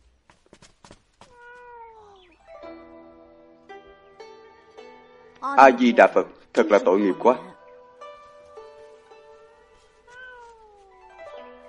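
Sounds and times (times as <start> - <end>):
cat meowing: 1.2 - 2.5, 10.0 - 11.2
speech: 5.4 - 7.5.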